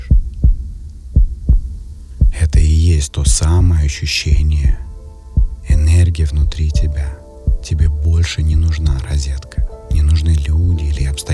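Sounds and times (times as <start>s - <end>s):
deep heartbeat: 0.0s - 2.6s, 4.3s - 8.0s, 8.9s - 10.2s
speech: 3.0s - 4.9s, 5.8s - 11.3s.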